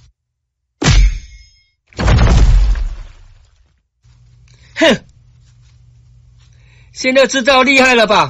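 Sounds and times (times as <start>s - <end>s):
punches landing on a person: 0.8s - 1.4s, 2.0s - 3.5s
speech: 4.8s - 5.1s, 7.0s - 8.2s.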